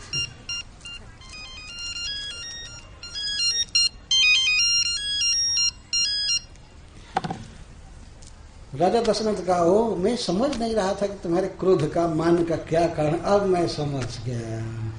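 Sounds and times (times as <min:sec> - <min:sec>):
mobile phone electronic ringtone: 0:00.0 - 0:06.5
speech: 0:08.8 - 0:14.8.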